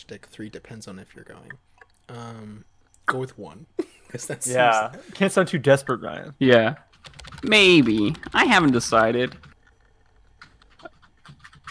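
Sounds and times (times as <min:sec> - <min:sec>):
speech: 0:00.0 - 0:09.5
quiet computer keyboard typing in a chat-messaging video game: 0:06.9 - 0:11.6.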